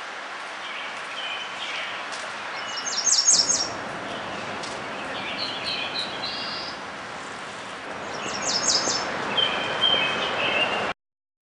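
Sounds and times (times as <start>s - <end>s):
black-throated blue warbler song: 0.6s - 10.9s.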